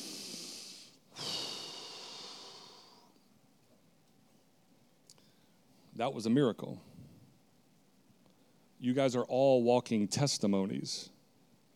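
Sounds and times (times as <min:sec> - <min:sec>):
group of people breathing in through lungs and out through mouth: 0:00.0 - 0:03.2, 0:05.2 - 0:05.9
speech: 0:06.0 - 0:06.9, 0:08.8 - 0:11.2.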